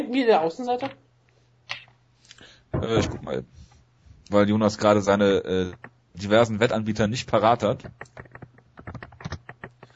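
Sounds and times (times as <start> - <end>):
speech: 0.1 - 1.0, 2.8 - 3.6, 4.3 - 8.4
man typing on a computer keyboard: 7.6 - 9.9.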